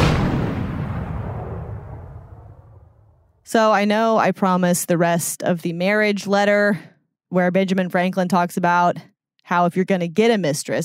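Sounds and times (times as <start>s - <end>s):
cannon blast with rumbling decay: 0.0s - 3.3s
speech: 3.5s - 10.8s.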